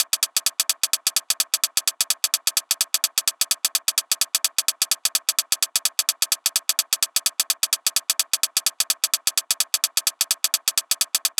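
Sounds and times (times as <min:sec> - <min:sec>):
hi-hat in big room house at 128 bpm: 0:00.0 - 0:11.3.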